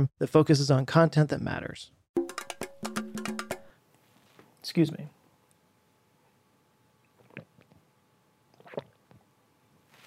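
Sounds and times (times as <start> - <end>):
speech: 0.0 - 2.0, 4.6 - 5.2
person drinking water: 7.2 - 7.8.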